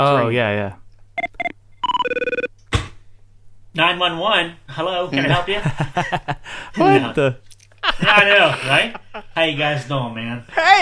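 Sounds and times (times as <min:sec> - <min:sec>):
speech: 0:00.0 - 0:00.8, 0:03.8 - 0:10.8
old-fashioned telephone bell ringing: 0:01.2 - 0:02.5
laughter: 0:05.2 - 0:07.2, 0:07.8 - 0:09.6.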